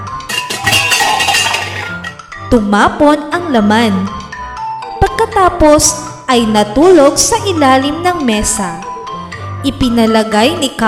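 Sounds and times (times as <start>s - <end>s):
coffee pot knocked over on a stove by a cat: 0.2s - 2.3s
dishes and utensils clinking and rattling together: 0.2s - 2.3s
speech: 2.5s - 4.2s, 5.2s - 8.8s, 9.6s - 10.8s.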